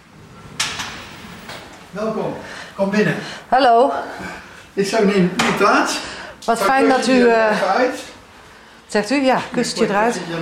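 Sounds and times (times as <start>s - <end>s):
door scraping rattle: 0.0s - 2.0s
quiet room hum: 0.0s - 10.4s
speech: 2.0s - 8.1s, 8.9s - 10.4s.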